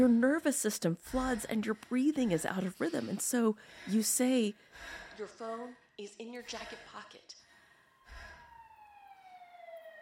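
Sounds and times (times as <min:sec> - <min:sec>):
speech: 0:00.0 - 0:07.4
siren wailing: 0:07.6 - 0:10.0.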